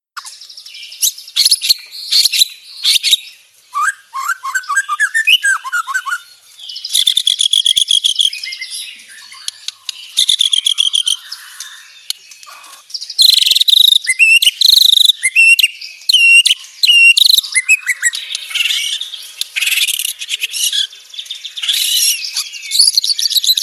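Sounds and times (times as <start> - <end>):
murai bird singing from Lampung: 0.2 - 23.6.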